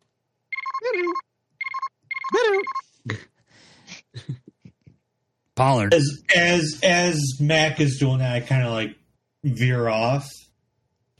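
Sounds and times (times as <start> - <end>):
faint electronic telephone ringtone: 0.5 - 2.8
speech: 5.6 - 10.4.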